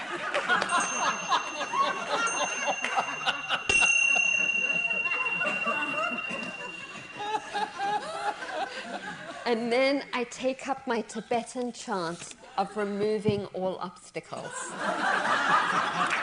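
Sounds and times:
laughter: 0:00.0 - 0:09.7, 0:14.4 - 0:16.2
hand bells ringing: 0:00.6 - 0:09.3
speech: 0:09.5 - 0:16.2.

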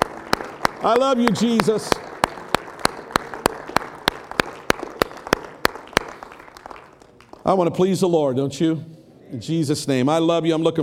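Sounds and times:
crowd at a worship service clapping hands in praise: 0:00.0 - 0:07.6
speech: 0:00.8 - 0:02.1, 0:07.4 - 0:10.8.

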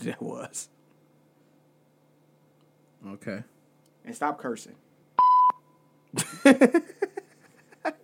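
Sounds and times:
speech: 0:00.0 - 0:00.8, 0:03.0 - 0:04.8, 0:06.1 - 0:07.0
censor bleep from a button: 0:05.2 - 0:05.9
laughter: 0:06.2 - 0:08.0.

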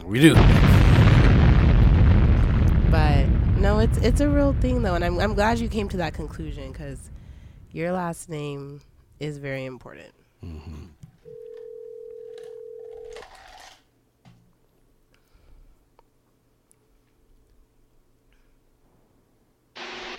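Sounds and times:
speech: 0:00.1 - 0:00.7, 0:02.9 - 0:07.1, 0:07.7 - 0:10.8
loud burst of noise: 0:00.3 - 0:07.8, 0:19.8 - 0:20.1
low hum: 0:00.4 - 0:09.3
phone call ringback tone on speakerphone: 0:11.2 - 0:13.2.

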